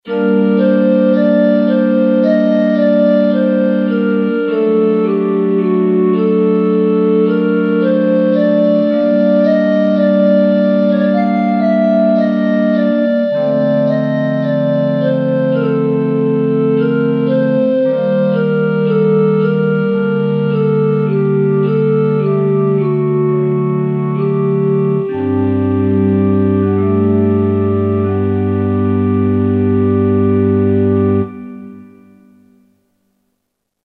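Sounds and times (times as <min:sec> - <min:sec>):
flute pipes patch on a keyboard synthesizer: 0:00.0 - 0:32.6.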